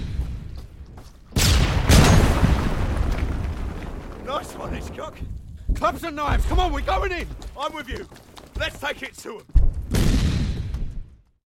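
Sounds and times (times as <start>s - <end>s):
Mills bomb hand grenade explosion: 1.3s - 5.2s, 9.6s - 11.1s
speech: 4.6s - 10.1s.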